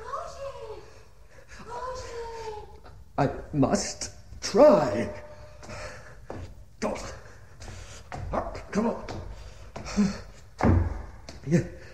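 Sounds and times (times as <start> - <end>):
speech: 3.2 - 5.2, 10.0 - 10.2
heavy thuds against the locked door of a bell tower: 8.1 - 11.5.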